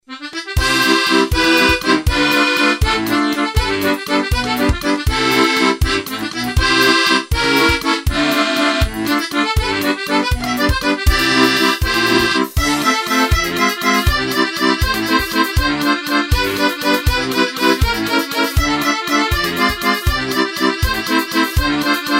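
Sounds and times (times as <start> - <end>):
bayan accordion: 0.1 - 22.1.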